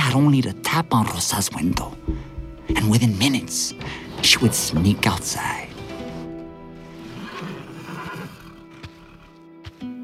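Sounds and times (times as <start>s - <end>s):
speech: 0.1s - 5.7s
hooves shifting on a stable floor: 1.6s - 6.1s
horse whinnying with a long wavering neigh: 6.8s - 9.3s.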